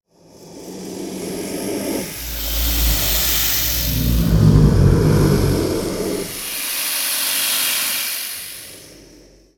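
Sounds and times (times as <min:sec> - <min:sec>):
serpent hissing: 0:02.0 - 0:08.2.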